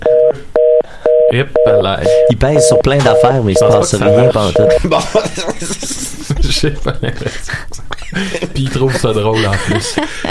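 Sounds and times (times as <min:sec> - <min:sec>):
electronic telephone beeps with two-note tone: 0:00.1 - 0:04.8
speech: 0:01.3 - 0:10.3
laughter: 0:03.9 - 0:10.3.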